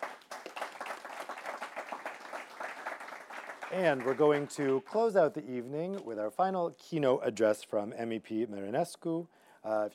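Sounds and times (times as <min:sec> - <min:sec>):
room full of people applauding: 0:00.0 - 0:05.0
speech: 0:03.7 - 0:09.9.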